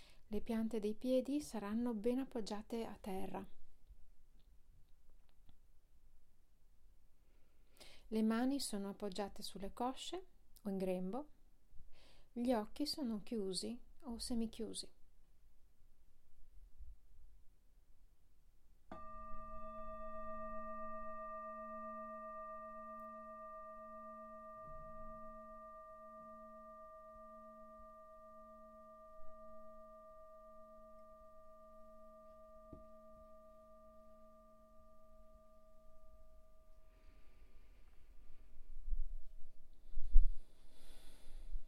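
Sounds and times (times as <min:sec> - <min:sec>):
speech: 0:00.3 - 0:03.6, 0:08.1 - 0:11.4, 0:12.4 - 0:15.0
single meditation bell ringing at the start of meditation practice: 0:18.9 - 0:37.7.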